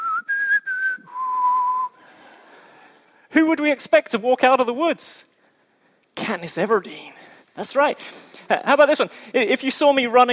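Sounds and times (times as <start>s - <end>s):
human whistling a four-note call sign: 0.0s - 2.0s
speech: 3.3s - 5.3s, 6.3s - 10.3s.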